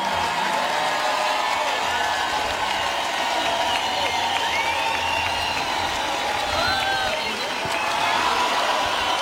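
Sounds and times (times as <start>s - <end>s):
large concert crowd clapping and cheering: 0.0s - 9.2s
crowd whistles and whoops: 2.6s - 9.2s.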